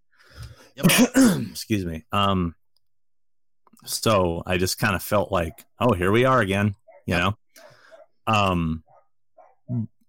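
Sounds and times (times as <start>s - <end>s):
speech: 0.8s - 2.6s, 3.8s - 7.7s, 8.3s - 8.8s, 9.7s - 9.9s
dogs barking: 5.2s - 9.8s.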